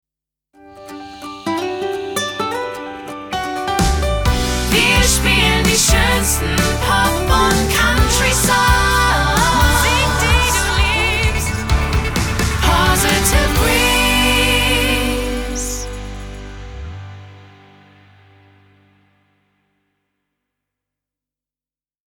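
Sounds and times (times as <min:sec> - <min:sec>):
sung jingle in G major with slogan: 0:01.2 - 0:18.9.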